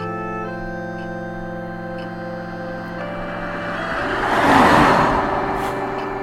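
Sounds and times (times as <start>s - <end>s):
car driving past outside: 2.5s - 6.2s.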